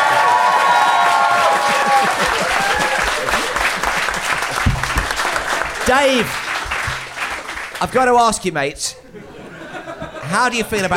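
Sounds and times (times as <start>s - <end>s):
faint cheers and voices: 0.0s - 3.6s
crowd applauding: 0.0s - 8.1s
laughter: 0.9s - 5.8s, 8.9s - 10.9s
speech: 5.9s - 6.4s, 7.8s - 9.1s, 10.3s - 10.9s.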